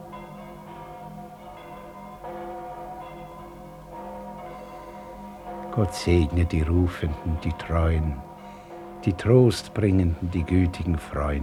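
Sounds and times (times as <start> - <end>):
church bells in London ringing in the new year: 0.0 - 11.4
speech: 5.8 - 8.3, 9.0 - 11.4.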